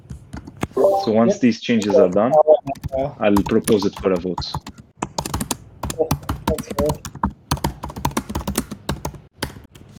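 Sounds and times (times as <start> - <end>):
speech: 0.9 - 4.7
loud typing on a computer keyboard: 2.0 - 9.7.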